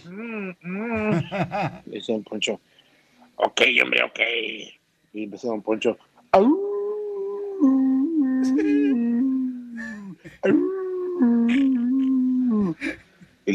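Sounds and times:
speech: 0.0s - 0.7s, 1.3s - 2.8s, 3.4s - 6.7s, 10.4s - 11.8s, 12.7s - 13.5s
laughter: 0.7s - 1.9s, 8.4s - 9.2s
man imitating a coyote howl: 6.4s - 12.8s.

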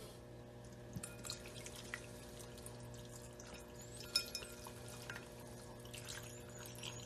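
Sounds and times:
low hum: 0.0s - 7.0s
freshly boiled water poured into a container for ramen noodles: 1.0s - 7.0s
small clinks: 3.4s - 5.2s.

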